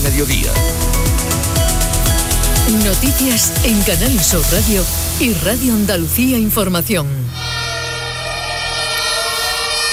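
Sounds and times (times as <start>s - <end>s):
speech: 0.2s - 1.8s, 2.7s - 7.4s
fire engine sirens wailing: 7.4s - 9.9s.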